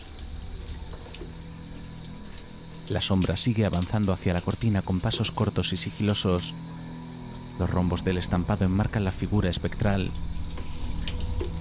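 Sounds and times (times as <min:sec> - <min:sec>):
shower water falling on a person's body: 0:00.0 - 0:11.5
speech: 0:02.9 - 0:06.7, 0:07.6 - 0:10.3.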